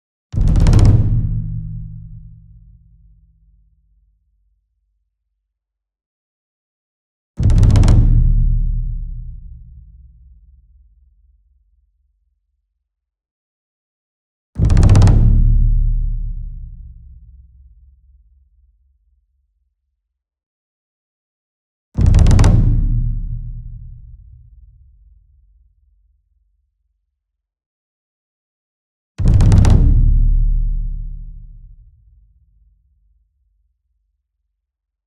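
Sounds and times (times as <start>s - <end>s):
close ensemble taiko drum roll: 0.4s - 2.1s, 7.4s - 9.6s, 14.6s - 16.0s, 22.0s - 24.2s, 29.2s - 30.6s.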